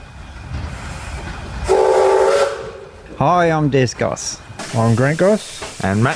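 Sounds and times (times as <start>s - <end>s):
steam locomotive on a tourist railway in Devonport Tasmania rumbling: 0.0s - 6.1s
steam locomotive whistle blast: 1.7s - 2.8s
speech: 3.2s - 6.1s.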